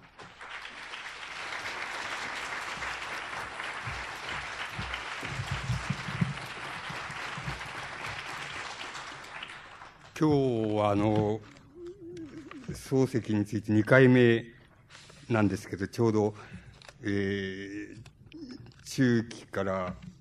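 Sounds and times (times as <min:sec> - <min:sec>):
audience applause welcoming a speaker: 0:00.0 - 0:11.0
speech: 0:10.2 - 0:11.5, 0:12.9 - 0:14.6, 0:15.3 - 0:18.1, 0:19.0 - 0:20.0.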